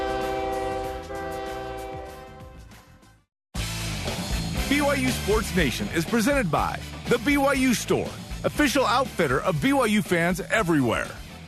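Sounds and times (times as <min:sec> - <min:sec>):
train horn blast: 0:00.0 - 0:03.2
passing train rumble: 0:00.0 - 0:10.4
speech: 0:04.8 - 0:11.2.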